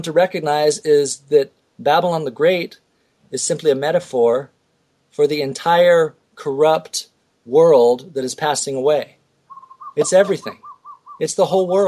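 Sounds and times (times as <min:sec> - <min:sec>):
speech: 0:00.0 - 0:09.2, 0:10.0 - 0:11.8
Hawaiian bird whistling outside a window: 0:09.5 - 0:11.3.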